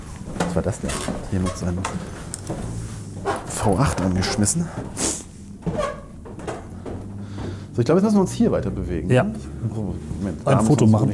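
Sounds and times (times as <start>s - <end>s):
old wooden floorboards in an old house creaking underfoot: 0.0s - 7.7s
speech: 0.5s - 2.9s, 3.5s - 6.0s, 7.8s - 11.1s.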